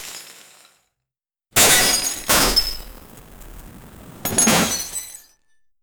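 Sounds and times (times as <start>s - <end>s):
glass shattering and breaking: 1.6s - 5.3s.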